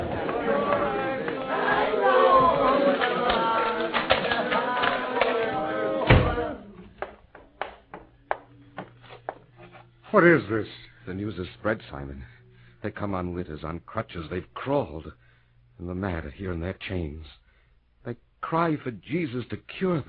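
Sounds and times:
murmuring crowd: 0.0 - 9.0
door opening with a solid thump: 6.0 - 6.5
speech: 10.1 - 15.2, 15.8 - 17.4, 18.0 - 20.0.

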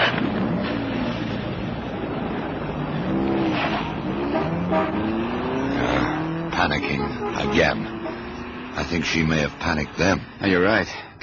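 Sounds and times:
car engine revving as car pulls away accelerating: 0.2 - 10.4
speech: 8.8 - 11.2.

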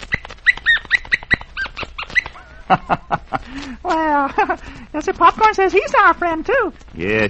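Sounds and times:
small puppy yapping and yelping: 0.0 - 2.7
laughter: 2.4 - 4.8
speech: 2.7 - 7.2.

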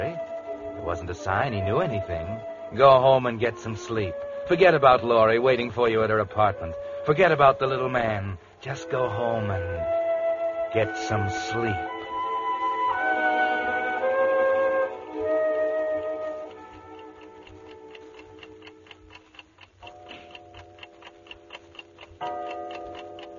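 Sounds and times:
speech: 0.0 - 10.0, 10.7 - 12.0
clock ticking: 0.0 - 23.3
clock striking two o'clock with ringing chimes: 22.2 - 23.3.

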